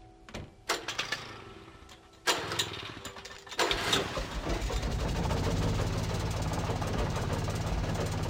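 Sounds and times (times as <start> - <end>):
old generator in a shed in a video game sputtering and running: 2.2 - 8.2.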